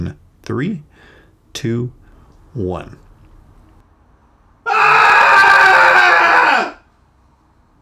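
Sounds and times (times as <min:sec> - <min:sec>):
speech: 0:00.0 - 0:02.0, 0:02.6 - 0:03.0
several voices screaming together: 0:04.7 - 0:06.8.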